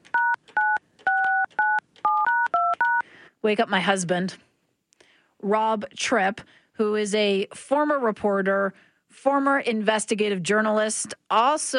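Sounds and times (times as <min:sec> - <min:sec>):
crisp dual-pitched telephone keypad tones: 0:00.0 - 0:03.0
speech: 0:03.4 - 0:04.4, 0:05.4 - 0:11.7.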